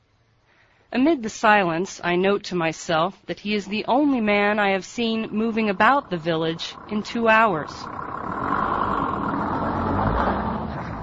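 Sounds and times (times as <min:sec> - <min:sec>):
speech: 0:00.9 - 0:08.1
ramshackle old truck engine rumbling in a snow-strewn village in the Chernobyl zone: 0:03.9 - 0:11.0.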